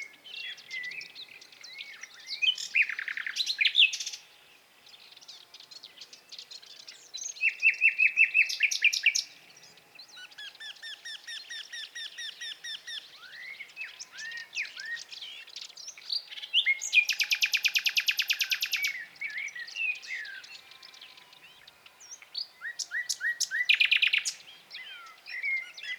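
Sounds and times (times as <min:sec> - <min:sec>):
common nightingale Luscinia megarhynchos song with rising whistles and buzzy rattles: 0:01.7 - 0:04.2, 0:07.2 - 0:09.3, 0:10.3 - 0:25.9.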